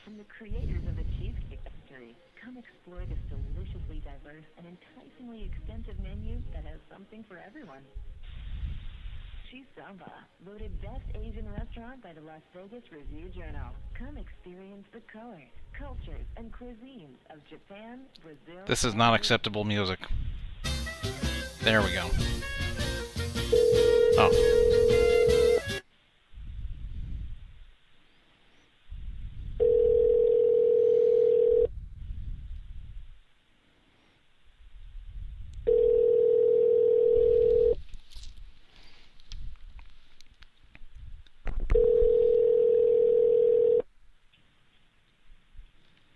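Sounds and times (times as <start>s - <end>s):
speech: 0.1s - 8.2s, 9.5s - 20.4s, 21.0s - 23.0s, 23.8s - 25.0s
telephone ringback tone over a phone line on a call to a restaurant: 23.5s - 25.8s, 29.6s - 31.7s, 35.7s - 37.8s, 41.8s - 43.8s.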